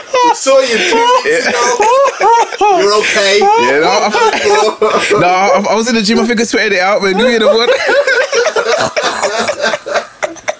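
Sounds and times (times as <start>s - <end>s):
laughter: 0.0s - 10.5s
speech: 0.4s - 8.2s
person coughing harsh raspy bursts: 0.8s - 5.4s, 7.7s - 10.5s.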